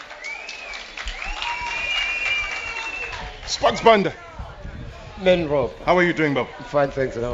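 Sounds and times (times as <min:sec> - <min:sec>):
live audience applauding: 0:00.0 - 0:04.1
long shrill whistles from the crowd: 0:00.1 - 0:03.5
speech: 0:03.5 - 0:04.2, 0:05.2 - 0:07.3.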